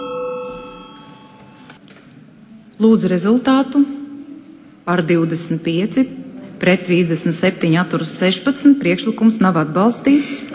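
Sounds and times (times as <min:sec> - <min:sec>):
bell ringing to call a vote in a parliamentary session: 0:00.0 - 0:01.8
speech: 0:02.8 - 0:04.0, 0:04.8 - 0:10.5.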